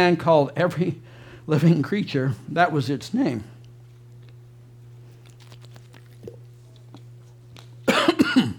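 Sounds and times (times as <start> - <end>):
speech: 0.0 - 3.5
person coughing into the microphone: 7.9 - 8.5.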